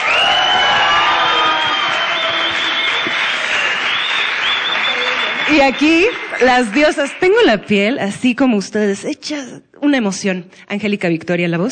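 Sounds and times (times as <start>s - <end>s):
cheers and whistles: 0.0s - 6.4s
large audience applauding: 0.0s - 8.0s
speech: 5.5s - 11.7s.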